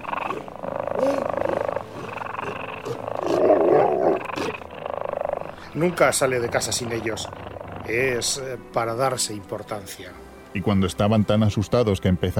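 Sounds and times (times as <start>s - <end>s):
panthers, tigers and lynxes roaring and growling: 0.0s - 8.5s
speech: 5.8s - 12.3s.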